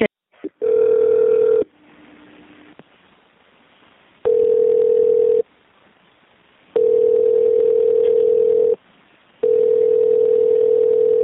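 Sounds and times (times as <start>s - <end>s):
telephone dial tone over a phone line after a call disconnects: 0.6s - 1.6s, 4.3s - 5.4s, 6.8s - 8.8s, 9.4s - 11.2s.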